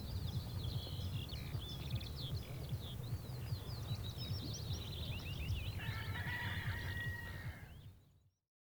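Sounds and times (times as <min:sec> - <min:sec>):
many small birds chirping and trilling: 0:00.0 - 0:07.0
rooster giving a drawn-out harmonic crow: 0:05.8 - 0:07.7.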